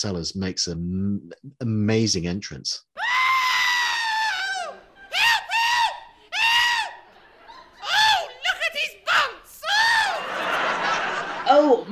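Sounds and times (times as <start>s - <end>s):
speech: 0.0s - 3.2s
comic falsetto voice shrieking from a played recording: 3.0s - 7.0s
laughter: 6.2s - 11.8s.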